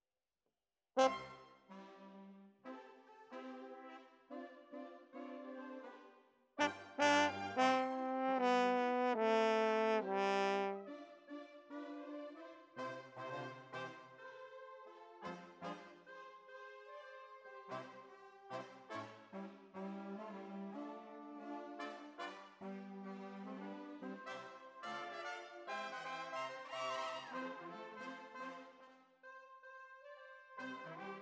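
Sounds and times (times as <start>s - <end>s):
horns: 1.0s - 2.3s, 6.6s - 11.0s, 11.8s - 14.1s, 15.2s - 16.0s, 17.6s - 29.0s, 30.0s - 31.1s.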